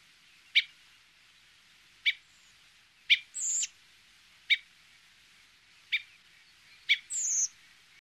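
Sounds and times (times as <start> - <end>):
redwing high thin descending seee calls: 0.0 - 0.8, 2.0 - 3.8, 4.5 - 4.7, 5.8 - 7.6.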